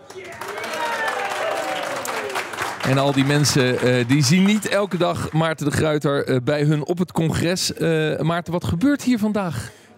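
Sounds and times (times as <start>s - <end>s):
live audience at a real estate financing conference applauding: 0.0s - 5.7s
people whooping: 0.2s - 2.5s
speech: 2.9s - 9.9s.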